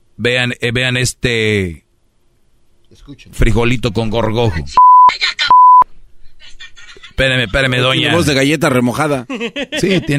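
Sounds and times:
speech: 0.2 - 1.8, 2.9 - 5.2, 7.2 - 10.1
censor bleeps over swear words: 4.8 - 5.8.

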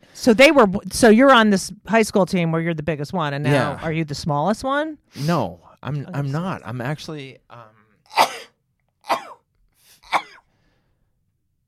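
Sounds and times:
speech: 0.2 - 8.4
person sneezing: 8.1 - 10.4.

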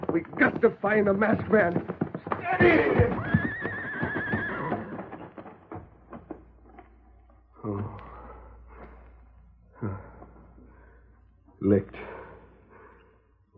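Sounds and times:
knocks and thumps: 0.0 - 7.2
speech: 0.1 - 1.9, 2.5 - 3.3
horse neighing and whinnying: 2.2 - 5.5.

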